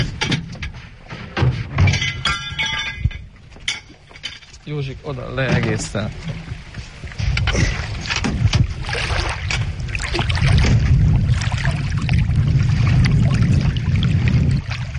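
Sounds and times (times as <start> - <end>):
strong wind buffeting the microphone: 0.0 - 14.9
splashes: 3.9 - 14.9
speech: 4.7 - 6.5.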